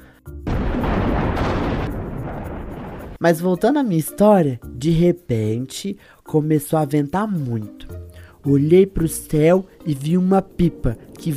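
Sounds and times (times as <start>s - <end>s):
loud explosive crash amid lightning bolts: 0.5s - 3.2s
speech: 3.2s - 11.3s.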